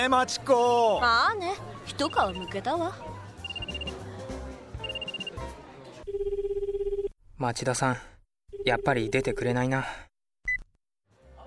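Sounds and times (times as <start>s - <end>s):
speech: 0.0s - 3.1s, 7.4s - 10.0s
mobile phone ringing: 3.4s - 4.0s, 4.8s - 5.4s, 6.0s - 7.1s, 8.5s - 9.6s.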